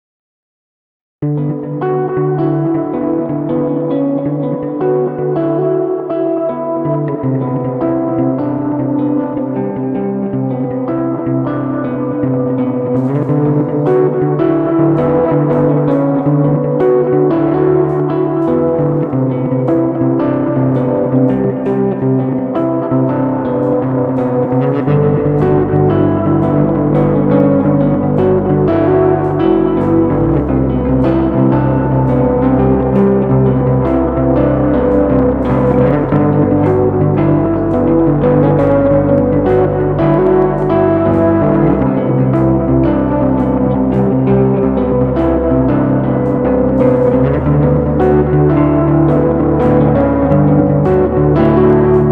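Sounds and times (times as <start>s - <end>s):
bass in a monitor mix: 1.2s - 52.1s
guitar in a monitor mix: 1.2s - 52.1s.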